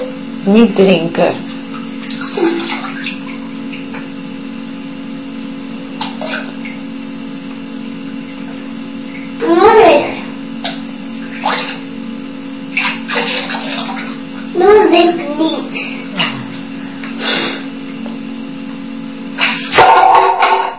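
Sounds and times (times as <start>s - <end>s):
speech: 0.4s - 1.5s
water sloshing and splashing in a bathtub as a child is bathed: 1.3s - 4.2s, 5.9s - 6.9s, 7.6s - 12.0s, 12.6s - 16.3s, 19.3s - 20.7s
child talking: 9.4s - 10.3s, 14.5s - 15.8s.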